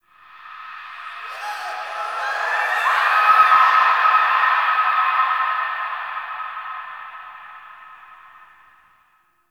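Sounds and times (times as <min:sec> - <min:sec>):
ambience: 0:00.8 - 0:08.6
laughter: 0:01.1 - 0:04.4.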